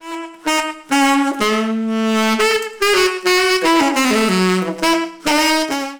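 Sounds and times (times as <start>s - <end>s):
saxophone: 0.0s - 5.9s.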